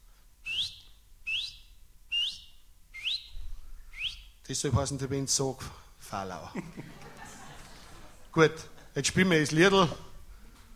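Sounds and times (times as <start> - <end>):
person whistling rising notes imitating a small bird's rasping saw-file-like call: 0.4 - 4.4
speech: 4.5 - 7.0, 8.4 - 10.1
laughter: 6.4 - 9.0.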